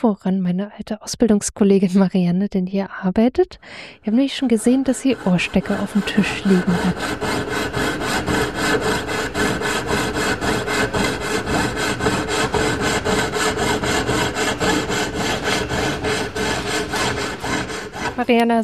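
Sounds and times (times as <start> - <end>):
speech: 0.0 - 7.8, 18.2 - 18.6
small hand saw sawing through material: 4.4 - 18.4.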